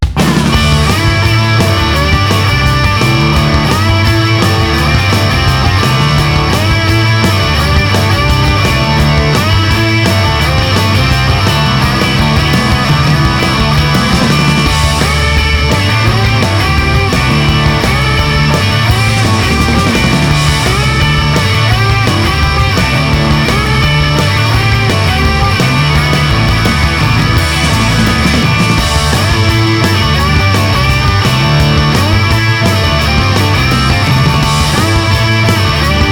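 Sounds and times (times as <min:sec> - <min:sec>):
rock music: 0:00.0 - 0:36.0.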